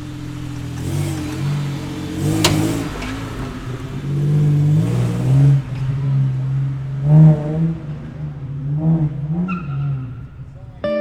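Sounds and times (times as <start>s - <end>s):
classic sports car engine idling and revving: 0.0s - 10.9s.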